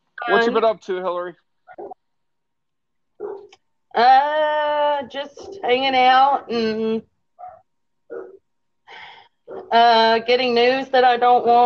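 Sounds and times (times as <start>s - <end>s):
speech: 0.3s - 2.0s, 4.0s - 7.1s, 9.5s - 11.6s
dog barking: 1.7s - 2.0s, 3.2s - 3.6s, 7.4s - 8.4s, 9.5s - 9.8s.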